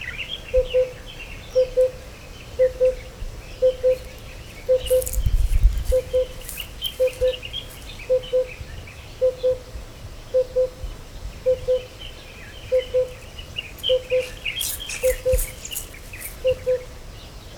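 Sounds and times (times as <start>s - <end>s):
Oriental cuckoo Cuculus optatus calling: 0.5s - 9.6s, 12.7s - 16.9s.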